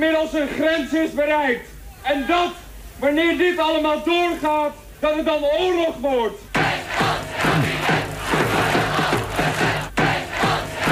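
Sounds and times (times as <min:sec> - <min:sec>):
speech: 0:00.0 - 0:06.5
large protest crowd shouting and chanting: 0:06.6 - 0:10.9.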